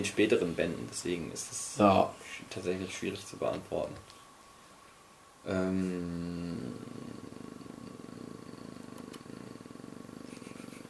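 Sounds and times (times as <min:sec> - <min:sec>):
speech: 0:00.0 - 0:04.2, 0:05.4 - 0:07.3
purr-like drone from a glitching recording: 0:05.5 - 0:10.8.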